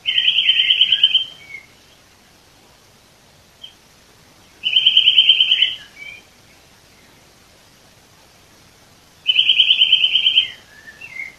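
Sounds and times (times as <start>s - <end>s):
Eurasian nuthatch Sitta europaea ringing trill: 0.0s - 1.7s, 4.6s - 6.2s, 9.3s - 11.3s.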